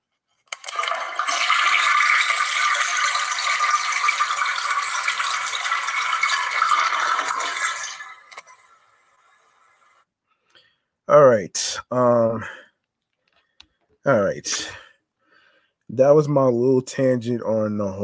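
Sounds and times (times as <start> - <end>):
toilet flushing: 0.5 - 10.0
speech: 14.1 - 14.8, 16.0 - 18.0.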